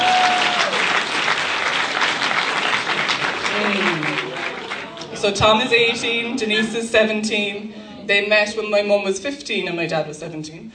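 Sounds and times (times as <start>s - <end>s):
crowd applause: 0.0s - 5.4s
speech: 5.2s - 10.7s.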